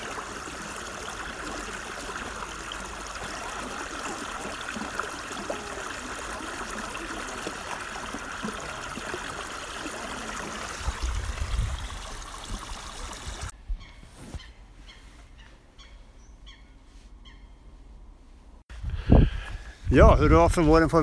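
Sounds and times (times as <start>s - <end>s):
quieter sparser trickle of brook water: 0.0s - 13.5s
small spring brook babbling and rushing: 0.0s - 13.5s
speech: 20.0s - 21.0s.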